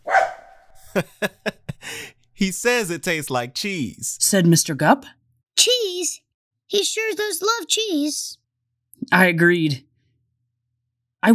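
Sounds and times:
dog barking happily: 0.1 - 0.5
laughter: 0.8 - 4.2
speech: 1.0 - 1.5, 2.4 - 8.4, 9.1 - 9.9.

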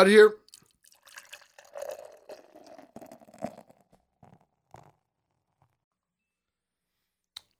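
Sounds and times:
speech: 0.0 - 0.4
beer drips: 0.4 - 3.7
hazy IPA beer being poured into a glass: 0.4 - 5.0.

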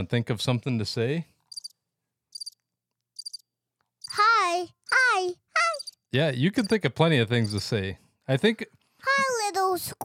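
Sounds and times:
speech: 0.0 - 1.3, 6.1 - 10.0
cricket chirping: 1.5 - 2.6, 3.2 - 4.2, 4.9 - 6.0, 7.4 - 7.6.

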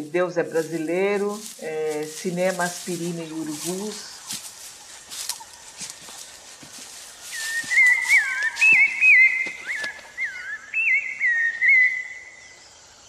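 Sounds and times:
speech: 0.0 - 4.1
faint ambience: 0.0 - 13.0
person whistling an imitation of sabiá thrush song: 7.3 - 12.2.

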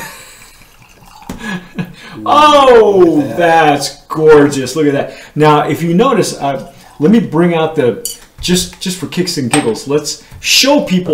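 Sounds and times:
tequila pouring into a Riedel glass: 0.0 - 1.8
speech: 1.4 - 11.1.

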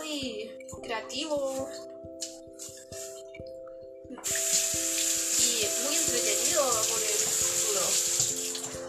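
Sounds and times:
speech: 0.2 - 1.9
faucet water hissing and splashing into a sink while washing dishes: 4.2 - 8.7.

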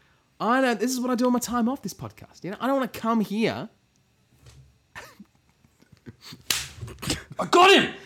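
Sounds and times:
speech: 0.4 - 3.8, 7.4 - 8.0
hand slaps swatting a fly: 6.4 - 6.9
person exclaiming: 7.4 - 8.0.

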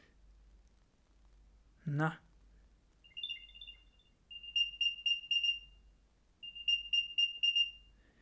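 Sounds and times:
speech: 1.8 - 2.2
shrill lost-item alert beeps from a small battery-powered item tracker: 3.0 - 5.8, 6.4 - 7.9.

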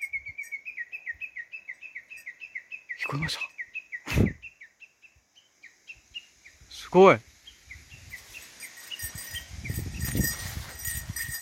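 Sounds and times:
bird singing outdoors on a mountain below the observation deck: 0.0 - 11.4
speech: 3.1 - 3.5, 6.9 - 7.3.

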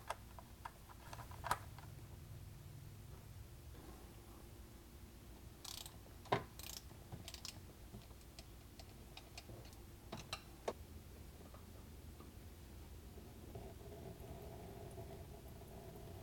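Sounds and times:
low steady hum: 0.0 - 16.2
ratchet clicking while tightening an oil drain plug: 5.6 - 6.0, 6.6 - 7.6.

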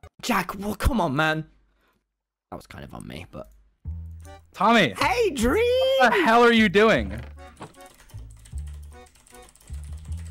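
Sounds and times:
speech: 0.2 - 1.6, 2.5 - 7.7
rapid keyboard typing with clacking keystrokes: 7.0 - 10.2.

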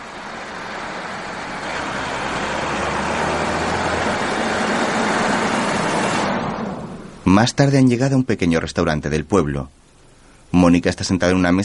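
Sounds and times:
car passing by on a road: 0.0 - 7.2
speech: 7.3 - 9.8, 10.5 - 11.6.

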